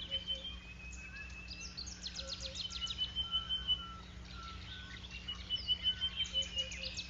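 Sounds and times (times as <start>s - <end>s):
steady hum: 0.0s - 7.0s
superb starling giving shrill alarm calls: 0.0s - 7.0s.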